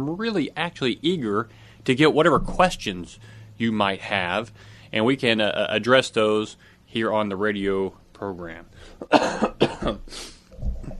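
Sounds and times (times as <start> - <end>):
speech: 0.0 - 10.7
harsh coughing: 8.8 - 10.4
throat clearing: 9.0 - 10.9.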